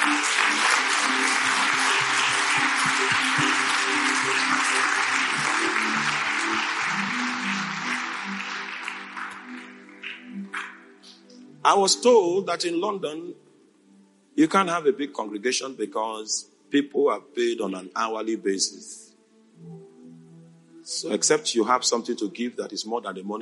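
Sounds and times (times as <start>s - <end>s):
church audience clapping and applauding: 0.0s - 11.4s
speech: 11.6s - 13.5s, 14.4s - 19.0s, 20.9s - 23.4s.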